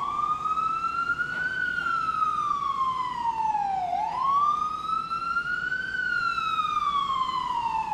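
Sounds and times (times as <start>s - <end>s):
ambulance siren wailing: 0.0s - 7.9s.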